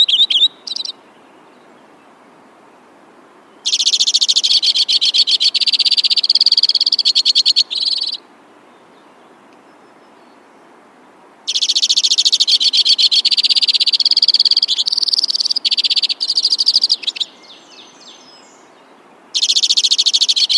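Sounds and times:
white-winged crossbill singing dry trills: 0.0 - 1.1, 3.6 - 8.2, 11.5 - 18.7, 19.4 - 20.5.

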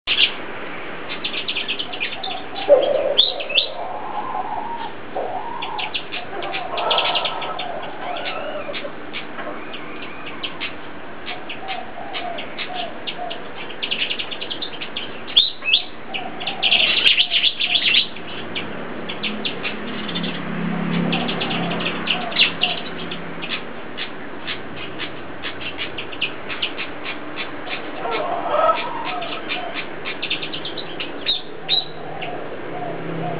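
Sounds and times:
pied fantail calling: 1.0 - 33.3.

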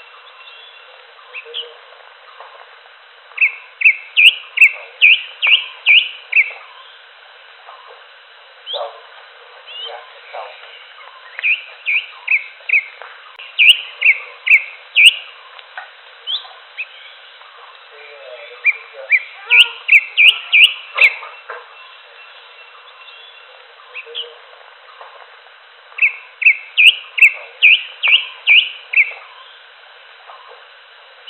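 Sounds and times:
greater green leafbird singing varied whistles: 3.4 - 6.5, 11.3 - 12.9, 13.6 - 15.3, 18.6 - 21.2, 26.0 - 29.2.

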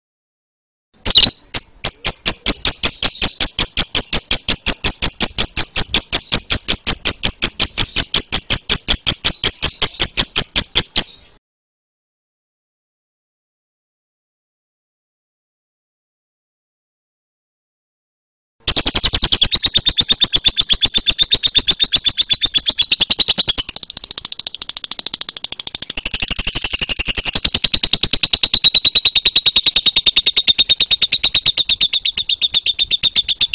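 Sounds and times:
lovebird calls: 1.0 - 11.4, 18.7 - 33.5.

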